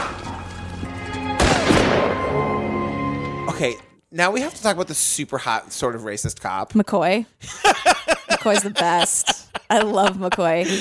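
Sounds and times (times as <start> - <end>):
sharp gunshot cracking: 1.4 - 2.5
speech: 3.6 - 10.7
laughter: 7.4 - 10.7.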